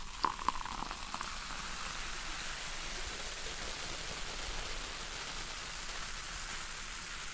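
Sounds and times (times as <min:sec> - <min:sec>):
soda pouring: 0:00.0 - 0:07.2.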